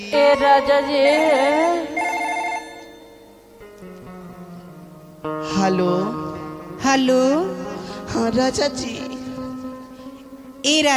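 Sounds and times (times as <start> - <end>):
speech: 0.0 - 2.0, 5.4 - 6.2, 6.8 - 9.0, 10.6 - 10.9
telephone ringing as a call is placed: 1.2 - 3.4.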